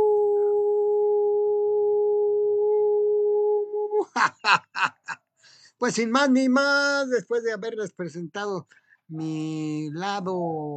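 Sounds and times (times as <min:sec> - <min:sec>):
person imitating a dog or wolf howl: 0:00.0 - 0:04.2
laughter: 0:04.0 - 0:05.2
speech: 0:04.2 - 0:10.7.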